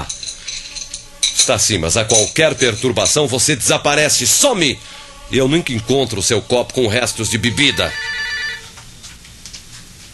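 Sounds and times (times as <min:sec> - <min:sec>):
speech: 0:01.5 - 0:08.2
telephone ringing: 0:06.8 - 0:08.7.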